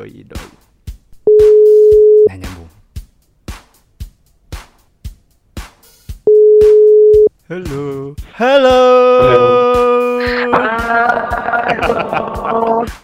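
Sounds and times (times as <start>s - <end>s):
speech: 0.0s - 0.6s, 7.5s - 8.9s
electronic telephone ringback tone on a call to a radio announcer: 1.3s - 2.3s, 6.3s - 7.3s
dialing noise: 6.3s - 7.3s
laughter: 9.2s - 13.0s.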